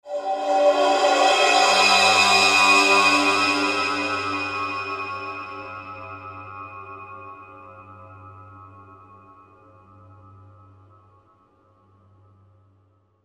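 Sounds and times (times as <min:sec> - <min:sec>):
20-inch cymbal: 0:00.1 - 0:07.5.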